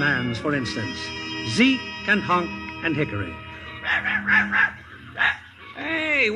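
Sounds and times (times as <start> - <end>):
speech: 0.0 - 4.8, 6.2 - 6.3
small dog yapping: 3.8 - 5.5.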